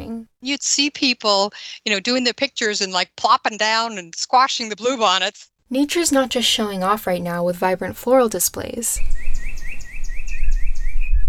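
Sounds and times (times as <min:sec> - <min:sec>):
speech: 0:00.1 - 0:09.4
birds chirping in a neighborhood in spring: 0:09.0 - 0:11.2.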